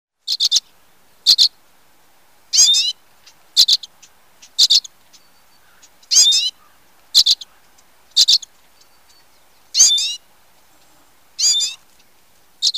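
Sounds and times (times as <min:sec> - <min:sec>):
Common Redpoll calls: 0:00.3 - 0:01.6, 0:02.5 - 0:10.3, 0:11.4 - 0:12.7.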